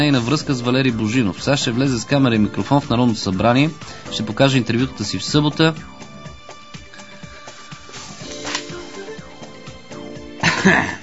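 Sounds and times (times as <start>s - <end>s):
speech: 0.0s - 5.9s, 10.6s - 11.0s
man clearing his throat: 10.4s - 11.0s
man coughing: 10.4s - 11.0s.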